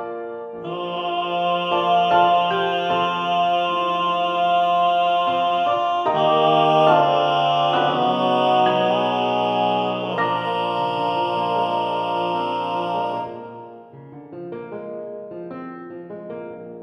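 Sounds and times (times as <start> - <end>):
SATB choir with balanced voices singing: 0.6 - 13.9.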